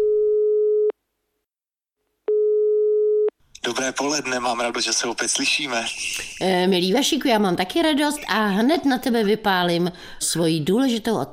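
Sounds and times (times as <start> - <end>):
telephone ringback tone: 0.0 - 0.9, 2.3 - 3.3
speech: 3.8 - 11.3.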